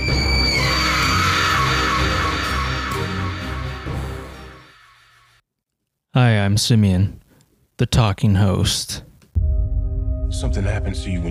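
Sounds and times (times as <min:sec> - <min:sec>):
loud raspy sinister scream: 0:00.0 - 0:05.4
speech: 0:06.1 - 0:07.2, 0:07.8 - 0:09.5, 0:10.3 - 0:11.2.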